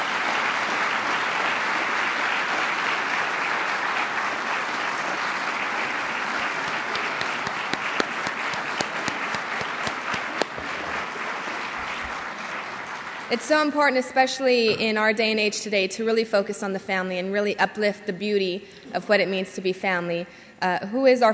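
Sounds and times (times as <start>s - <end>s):
audience applause for a keynote speaker: 0.0s - 13.6s
speech: 13.3s - 21.3s.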